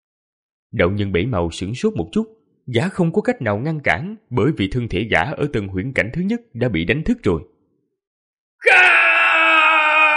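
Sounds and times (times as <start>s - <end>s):
speech: 0.7s - 7.5s, 8.6s - 9.0s
man screaming in furious rage: 8.6s - 10.1s.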